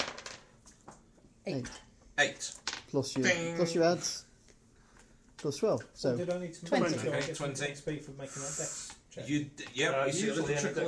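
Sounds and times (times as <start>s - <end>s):
dice rolled across a table in a tabletop game: 0.0s - 0.5s, 2.5s - 3.2s
speech: 1.5s - 4.3s, 5.4s - 10.8s.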